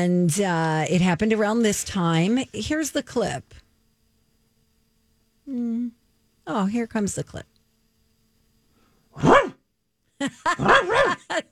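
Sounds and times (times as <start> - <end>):
speech: 0.0 - 3.6, 5.5 - 7.5, 9.2 - 9.5, 10.2 - 11.5
dog barking: 9.2 - 9.6, 10.5 - 11.2.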